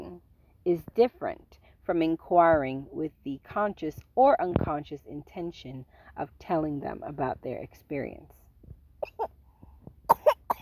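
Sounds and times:
speech: 0:00.7 - 0:08.4
person fake coughing: 0:10.1 - 0:10.6.

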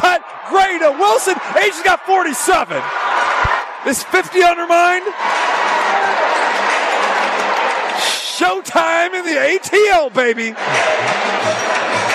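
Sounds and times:
man's amplified voice in basketball arena: 0:00.0 - 0:02.9, 0:03.8 - 0:05.1, 0:08.0 - 0:10.7
large basketball arena crowd cheering: 0:00.0 - 0:12.1
speech: 0:00.2 - 0:03.0, 0:03.8 - 0:06.4, 0:08.4 - 0:11.7.

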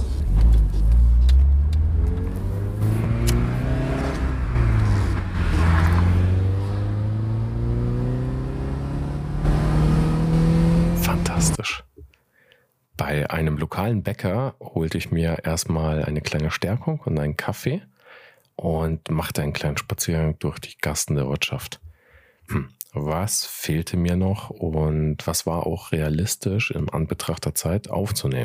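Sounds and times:
car engine revving through gear changes: 0:00.0 - 0:11.6
speech: 0:13.8 - 0:17.9, 0:18.6 - 0:21.9, 0:22.5 - 0:28.4.

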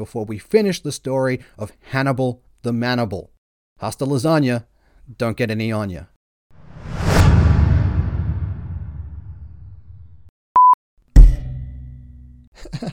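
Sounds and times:
speech: 0:00.0 - 0:06.1
heavy low thud: 0:06.8 - 0:10.0
short electronic beep: 0:10.6 - 0:10.8
slowed-down metallic hit on a microphone stand with reverb: 0:11.2 - 0:12.4.

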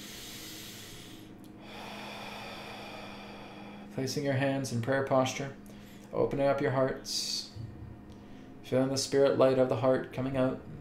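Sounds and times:
deep breathing in and out during a guided meditation: 0:00.0 - 0:04.0, 0:05.6 - 0:06.1, 0:07.6 - 0:08.6
speech: 0:04.0 - 0:07.4, 0:08.7 - 0:10.7.

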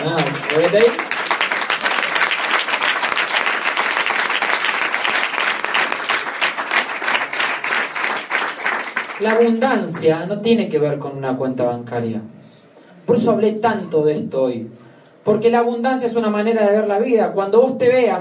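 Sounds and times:
speech: 0:00.0 - 0:01.1, 0:09.2 - 0:12.4, 0:13.1 - 0:18.1
audience applause: 0:00.0 - 0:09.6.

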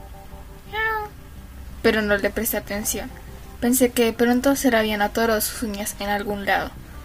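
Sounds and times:
cat meowing indoors: 0:00.7 - 0:01.1
speech: 0:01.8 - 0:06.8.

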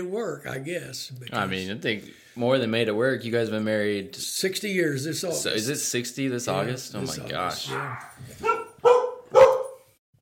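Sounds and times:
speech: 0:00.0 - 0:08.6
border collie and Havanese barking: 0:07.7 - 0:09.9.

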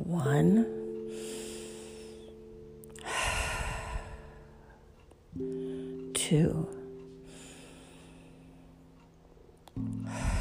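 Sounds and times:
speech: 0:00.1 - 0:01.3, 0:06.3 - 0:06.8
slow deep breathing during a guided breathing exercise: 0:01.0 - 0:06.1, 0:07.2 - 0:09.1, 0:09.8 - 0:10.3.

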